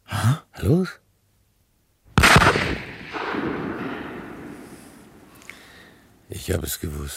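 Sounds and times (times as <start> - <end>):
speech: 0.2 - 1.0, 6.3 - 7.1
gunshot: 2.2 - 5.4.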